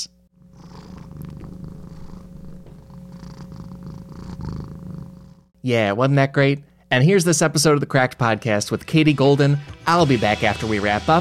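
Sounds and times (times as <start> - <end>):
domestic cat purring: 0.4 - 5.6
speech: 5.6 - 11.1.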